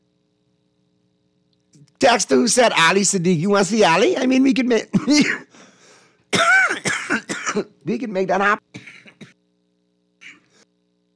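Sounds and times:
faint steady electrical hum: 0.0s - 11.1s
speech: 1.7s - 5.7s, 7.6s - 8.8s
person coughing: 4.9s - 5.7s, 6.3s - 7.8s, 8.7s - 9.4s, 10.2s - 10.6s.

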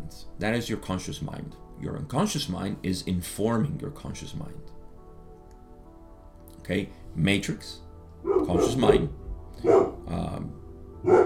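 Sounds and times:
speech: 0.1s - 4.8s, 6.7s - 11.2s
dog barking: 8.2s - 10.1s, 11.0s - 11.2s.

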